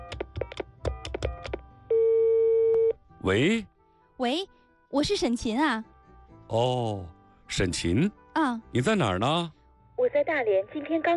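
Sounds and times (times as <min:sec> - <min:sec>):
telephone ringback tone while placing a call: 0:01.9 - 0:03.0
speech: 0:03.2 - 0:05.9, 0:06.5 - 0:11.1.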